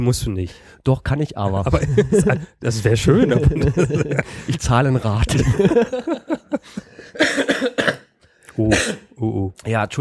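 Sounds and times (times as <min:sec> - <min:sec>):
speech: 0:00.0 - 0:07.7, 0:08.6 - 0:09.9
laughter: 0:01.5 - 0:07.5
person coughing up phlegm: 0:07.2 - 0:08.1, 0:08.7 - 0:09.1.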